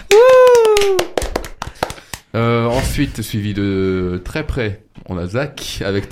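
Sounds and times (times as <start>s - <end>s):
drawn-out vocal cheer: 0.0s - 1.2s
small group hands clapping: 0.0s - 2.3s
speech: 2.4s - 6.0s.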